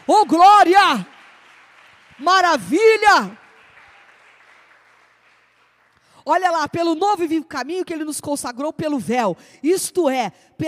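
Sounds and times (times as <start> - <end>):
congregation applauding: 0.0 - 6.1
speech: 0.1 - 1.1, 2.2 - 3.4, 6.3 - 10.6.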